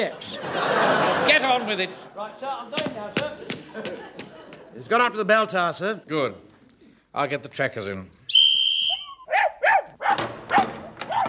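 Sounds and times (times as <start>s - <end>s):
speech: 0.0s - 0.6s, 1.3s - 6.5s, 7.1s - 8.2s
laughter: 0.0s - 5.2s
high whistle-like tone: 8.3s - 9.4s
dog barking while held on a leash: 9.3s - 11.2s.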